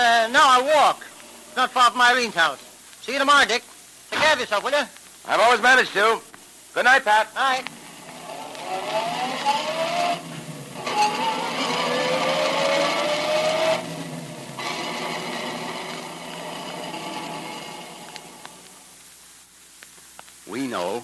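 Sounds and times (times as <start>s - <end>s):
speech: 0.0s - 7.8s, 20.5s - 21.0s
car engine accelerating through gear shifts: 7.7s - 18.8s.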